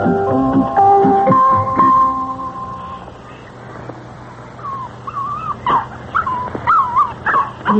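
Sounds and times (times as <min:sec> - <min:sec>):
low hum: 0:00.0 - 0:07.7
dog whimpering and whining with short yips: 0:04.6 - 0:07.7.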